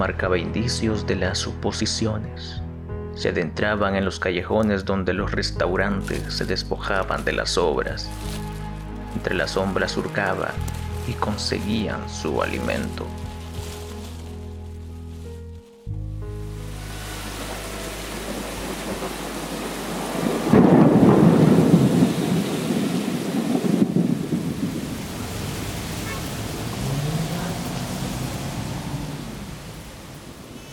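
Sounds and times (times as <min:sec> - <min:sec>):
speech: 0:00.0 - 0:02.6, 0:03.2 - 0:08.5, 0:09.2 - 0:13.2
steady rain during a thunderstorm over a city: 0:08.0 - 0:11.4, 0:12.4 - 0:15.8, 0:16.4 - 0:30.7
deep rolling thunderclap over a city: 0:17.0 - 0:30.5.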